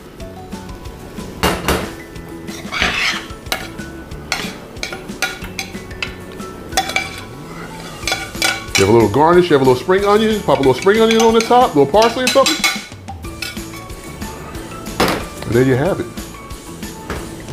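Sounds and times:
crockery and cutlery clinking and rattling in a kitchen: 1.4s - 14.1s
plate slid aside in a kitchen: 2.5s - 5.4s, 6.0s - 9.0s
speech: 8.8s - 12.7s, 15.6s - 16.2s.

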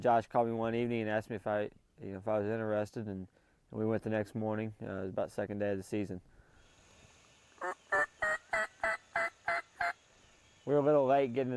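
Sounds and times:
speech: 0.0s - 6.3s, 10.6s - 11.5s
wild turkeys gobbling in the woods in the morning: 7.6s - 10.0s.

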